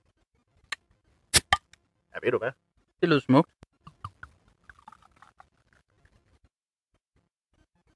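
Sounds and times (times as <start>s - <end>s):
bottle cap pried off a rum barrel-aged beer: 1.3s - 1.8s, 3.9s - 5.4s
speech: 2.2s - 3.6s.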